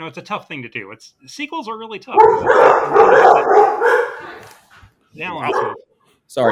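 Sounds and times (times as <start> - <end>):
speech: 0.0 - 4.6, 5.2 - 6.4
dogs barking loudly: 2.2 - 4.6, 5.2 - 5.8.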